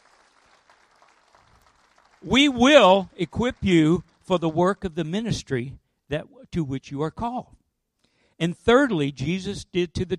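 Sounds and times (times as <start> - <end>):
audience applauding: 0.0 - 5.0
speech: 2.2 - 7.6, 8.4 - 10.1.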